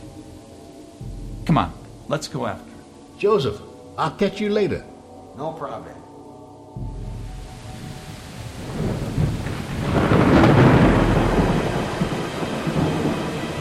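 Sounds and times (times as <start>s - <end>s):
steady thunderstorm rain hissing: 0.0s - 5.0s, 6.8s - 13.5s
speech: 1.5s - 6.0s
deep roll of thunder: 6.8s - 13.5s.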